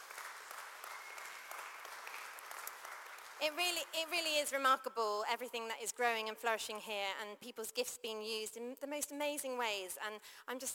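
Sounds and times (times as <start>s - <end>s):
crowd applauding: 0.0s - 4.0s
speech: 3.4s - 10.7s.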